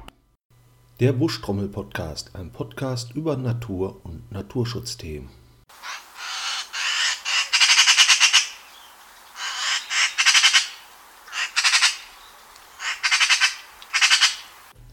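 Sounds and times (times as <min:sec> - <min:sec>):
speech: 0:01.0 - 0:05.4
Eurasian magpie giving harsh rattling chatter calls: 0:05.9 - 0:08.6, 0:09.4 - 0:12.1, 0:12.8 - 0:14.5.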